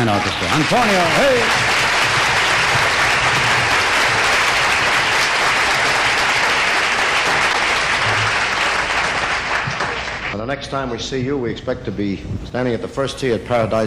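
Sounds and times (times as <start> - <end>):
speech: 0.0 - 1.8, 10.4 - 13.8
large audience applauding an orchestra: 0.0 - 10.4.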